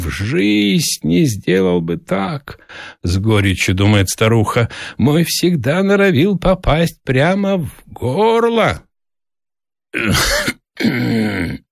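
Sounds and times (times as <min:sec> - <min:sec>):
speech: 0:00.1 - 0:08.9, 0:09.9 - 0:11.6
old man groaning while rubbing his eyes: 0:10.0 - 0:11.7.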